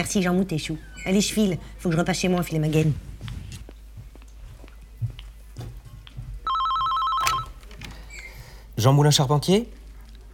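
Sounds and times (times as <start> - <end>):
speech: 0.0 - 3.1, 8.8 - 9.8
telephone ringing: 6.5 - 7.6.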